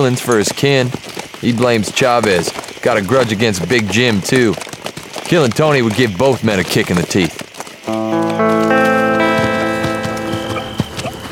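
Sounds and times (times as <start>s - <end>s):
speech: 0.0s - 4.7s, 5.3s - 8.0s
horse hooves clip-clopping at a walking pace: 0.0s - 11.2s
sustained layered tones: 7.9s - 11.2s.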